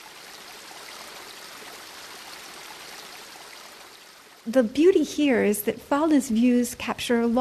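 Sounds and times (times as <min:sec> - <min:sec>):
water flowing from a fountain: 0:00.0 - 0:05.6
speech: 0:04.4 - 0:07.3.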